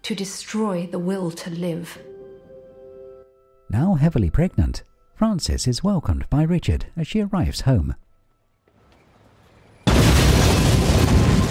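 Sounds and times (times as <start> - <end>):
speech: 0.1 - 2.1, 3.7 - 8.0
debris rumbling from bomb blast: 8.8 - 11.4
bomb exploding as it strikes a house: 9.8 - 11.4.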